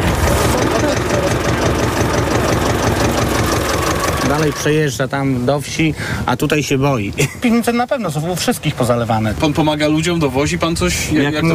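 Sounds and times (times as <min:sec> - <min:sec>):
tractor diesel engine idling: 0:00.0 - 0:04.8
laughter: 0:00.4 - 0:02.3
speech: 0:04.4 - 0:11.5.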